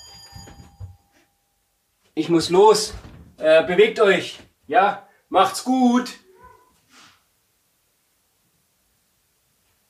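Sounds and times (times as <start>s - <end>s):
alarm clock ringing with a high electronic tone: 0.0s - 1.5s
speech: 2.2s - 6.2s.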